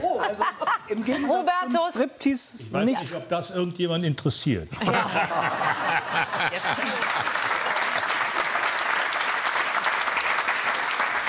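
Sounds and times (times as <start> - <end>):
voices and chuckles: 0.0 - 1.7, 4.7 - 7.3
speech: 0.3 - 7.4
group clapping: 5.9 - 11.2.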